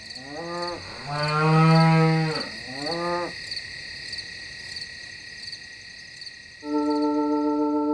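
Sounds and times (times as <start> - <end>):
constant high chirring of crickets: 0.0 - 7.8
cows mooing: 0.2 - 3.3.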